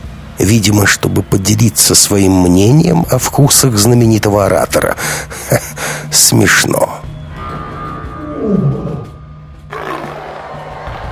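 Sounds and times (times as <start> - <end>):
low steady hum: 0.0 - 9.7
speech: 0.5 - 7.1, 8.4 - 8.8
big cat roaring in an arena: 7.4 - 10.4.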